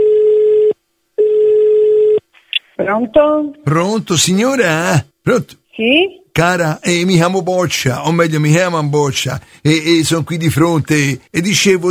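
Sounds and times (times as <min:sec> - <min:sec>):
telephone ringing tone on a radio call-in line: 0:00.0 - 0:02.2
speech: 0:02.9 - 0:11.8.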